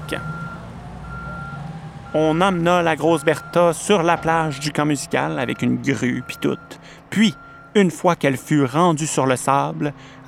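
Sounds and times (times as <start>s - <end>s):
low rumbling truck engine: 0.0s - 10.2s
speech: 0.1s - 0.4s, 2.1s - 10.2s
truck reversing alarm beeps: 0.1s - 8.6s.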